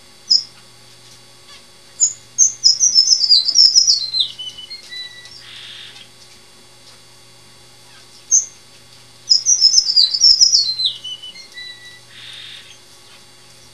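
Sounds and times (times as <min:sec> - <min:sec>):
strawberry finch singing: 0:00.3 - 0:00.6, 0:01.5 - 0:06.1, 0:07.9 - 0:08.6, 0:09.3 - 0:13.2.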